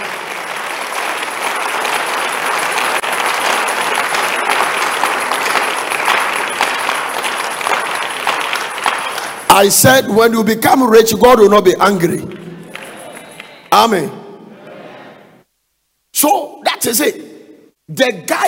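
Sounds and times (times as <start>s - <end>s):
crowd applauding: 0.0s - 9.9s, 11.9s - 14.0s
speech: 9.6s - 12.4s, 13.8s - 14.2s, 18.0s - 18.4s.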